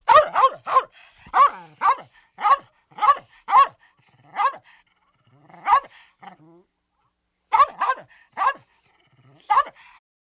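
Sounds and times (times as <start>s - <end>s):
small dog barking angrily: 0.0s - 4.6s, 5.5s - 6.0s, 7.5s - 8.7s, 9.4s - 9.9s.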